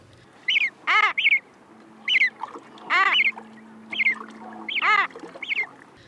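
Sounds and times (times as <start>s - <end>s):
adult common murre calling to its chick at sea: 0.3s - 6.0s.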